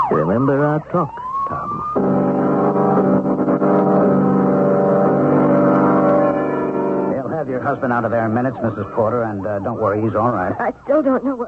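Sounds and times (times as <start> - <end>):
speech: 0.1 - 1.2, 7.4 - 11.4
car engine roaring while skidding off the road: 1.4 - 10.1.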